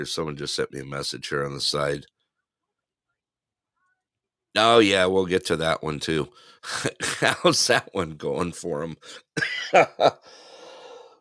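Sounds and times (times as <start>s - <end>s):
speech: 0.0s - 2.1s, 4.5s - 10.4s
laughter: 6.7s - 8.0s, 9.4s - 10.3s
person with a dry throat coughing: 9.1s - 10.2s.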